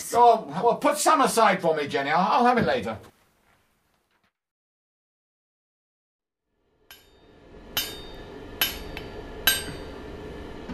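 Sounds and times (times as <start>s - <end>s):
speech: 0.1s - 3.1s
hammer striking a piece of metal to round off its corners: 6.8s - 10.1s.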